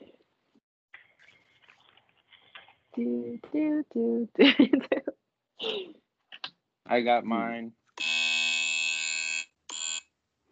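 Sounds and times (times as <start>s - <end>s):
speech: 3.0s - 5.0s, 6.9s - 7.8s
loud harsh game show buzzer: 8.0s - 10.0s.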